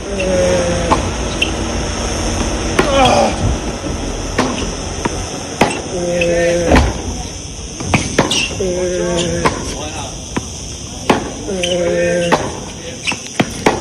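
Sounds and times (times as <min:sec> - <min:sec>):
voices: 0:00.0 - 0:13.7
tennis ball struck hard with a racket during practice at a country club: 0:04.4 - 0:05.9, 0:07.8 - 0:08.6, 0:09.2 - 0:09.8, 0:11.1 - 0:13.7.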